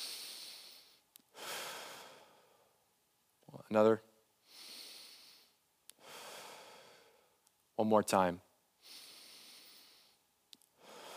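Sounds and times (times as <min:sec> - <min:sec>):
slow deep breath during guided group breathing: 0:00.0 - 0:02.8, 0:04.4 - 0:07.4, 0:08.8 - 0:10.2, 0:10.8 - 0:11.1
speech: 0:03.7 - 0:04.1, 0:07.8 - 0:08.4.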